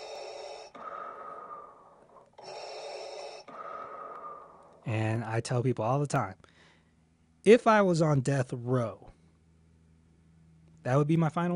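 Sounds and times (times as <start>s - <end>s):
heavy breathing: 0.0s - 4.9s
speech: 4.8s - 6.5s, 7.4s - 9.1s, 10.8s - 11.5s.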